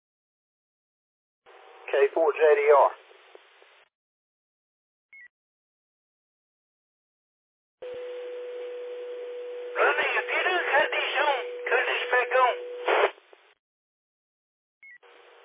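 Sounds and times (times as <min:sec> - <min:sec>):
speech: 0:01.9 - 0:03.0
touch-tone beeps entered over radio: 0:07.9 - 0:12.9
radio static: 0:09.8 - 0:13.2.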